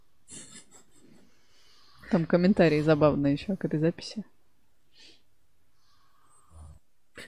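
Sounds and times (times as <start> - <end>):
speech: 2.1 - 4.4
electrician snoring in his sleep: 5.8 - 6.9.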